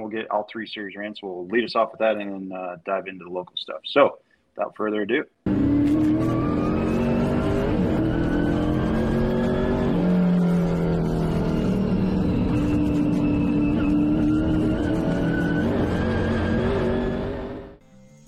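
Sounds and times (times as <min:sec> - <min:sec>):
speech: 0:00.1 - 0:05.6
race car engines roaring on a track: 0:05.5 - 0:17.8.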